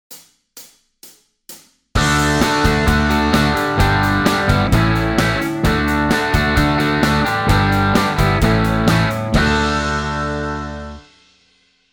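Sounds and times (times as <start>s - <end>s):
major chords: 2.0s - 11.0s.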